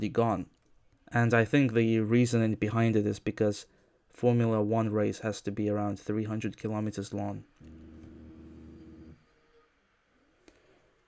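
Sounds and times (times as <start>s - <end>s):
speech: 0.0s - 7.8s
loud buzzing alarm: 7.6s - 9.2s.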